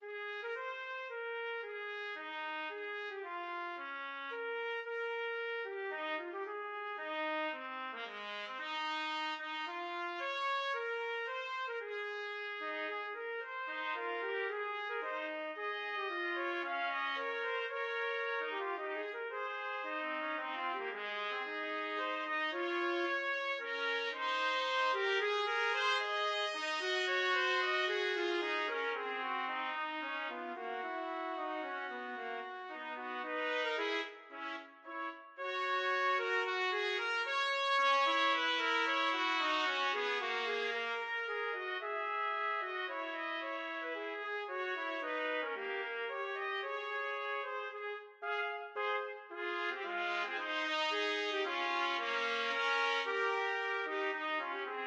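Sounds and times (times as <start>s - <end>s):
trumpet duet: 0.1s - 54.8s.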